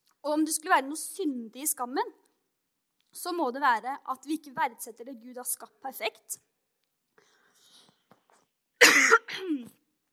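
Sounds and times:
speech: 0.2s - 2.3s, 3.1s - 6.5s, 9.4s - 9.8s
harsh throaty coughs: 8.8s - 9.8s.

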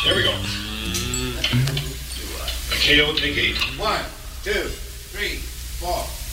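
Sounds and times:
man mooing like a cow: 0.1s - 1.7s
speech: 2.9s - 6.2s.

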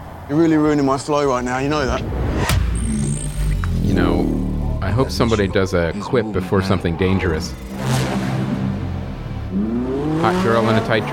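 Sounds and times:
speech: 0.3s - 2.2s, 4.0s - 4.2s, 5.0s - 8.2s, 10.2s - 11.1s
whoosh of passing air: 1.4s - 5.7s
fast car engine revving as it accelerates: 1.5s - 11.1s.

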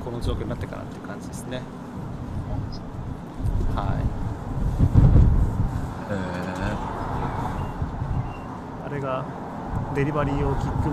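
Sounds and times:
cars passing on a city street in strong wind: 0.0s - 10.9s
light city traffic hum: 0.0s - 10.9s
speech: 0.1s - 4.2s, 4.8s - 5.2s, 6.1s - 6.6s, 8.9s - 10.9s
strong wind: 2.0s - 8.8s, 9.4s - 10.9s.

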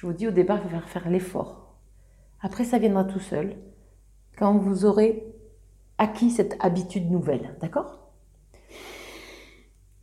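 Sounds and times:
speech: 0.0s - 1.6s, 2.4s - 3.7s, 4.4s - 5.4s, 6.0s - 8.0s
slow deep inhalation through the nose: 8.6s - 9.7s.

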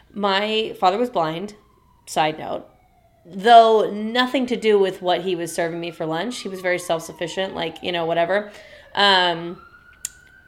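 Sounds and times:
siren wailing outside: 0.0s - 10.4s
speech: 0.2s - 9.7s.

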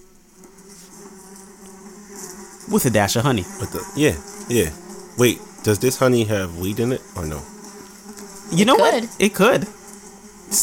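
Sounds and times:
bee buzzing: 0.0s - 10.6s
speech: 2.7s - 7.5s, 8.5s - 9.8s.

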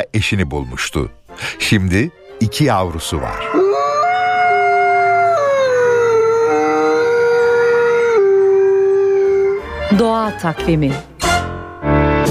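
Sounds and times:
speech: 0.0s - 3.8s, 9.9s - 11.1s, 11.8s - 12.3s
wolf howling: 2.3s - 9.9s.

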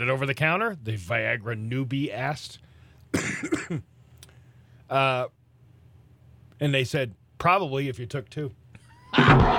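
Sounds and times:
speech: 0.0s - 3.9s, 4.9s - 5.4s, 6.6s - 9.5s
rough throaty cough: 3.1s - 3.9s.

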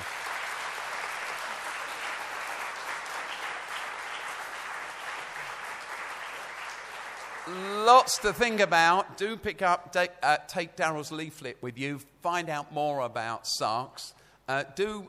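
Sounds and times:
audience applause: 0.0s - 8.0s
speech: 7.5s - 15.0s.

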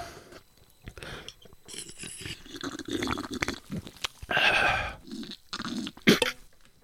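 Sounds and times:
mouth smacking clicks: 0.8s - 4.3s, 5.0s - 6.4s
swallowing: 0.8s - 6.4s
slurping sips of an energy drink: 1.7s - 6.4s.

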